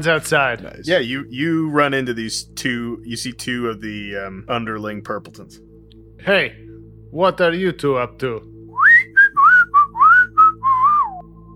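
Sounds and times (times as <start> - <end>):
speech: 0.0 - 8.5
two people whistling a casual innocent-sounding tune: 8.7 - 11.5.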